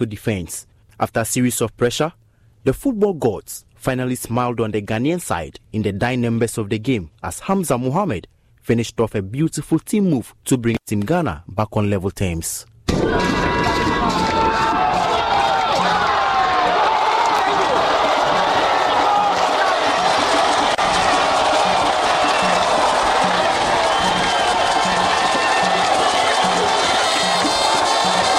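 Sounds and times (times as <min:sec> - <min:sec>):
speech: 0:00.0 - 0:14.4
football stadium crowd cheering on the team: 0:12.9 - 0:28.3
large football stadium crowd singing and chanting: 0:17.2 - 0:28.3.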